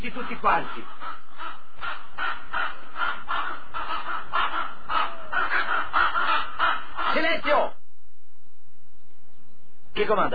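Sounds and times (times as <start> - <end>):
speech: 0.0 - 1.2, 10.0 - 10.3
flock of crows cawing: 0.0 - 7.8.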